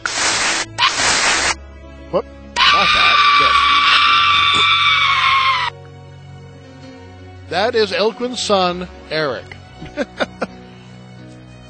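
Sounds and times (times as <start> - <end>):
short noisy bursts: 0.0 - 1.6
recorded boy letting out a shrill high-pitched scream: 0.8 - 1.1, 2.6 - 5.8
brief vocal yelp: 0.8 - 1.2, 2.6 - 5.7
speech: 2.1 - 3.6, 7.5 - 10.2
laughter: 9.8 - 10.6.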